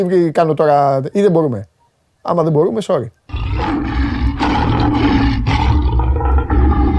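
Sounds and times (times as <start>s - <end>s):
speech: 0.0s - 3.2s
lion roaring: 3.3s - 6.9s.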